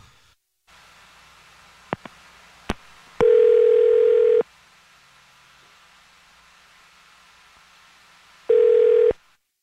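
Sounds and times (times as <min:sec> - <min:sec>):
phone outgoing ringback tone: 0:03.2 - 0:04.5, 0:08.5 - 0:09.2.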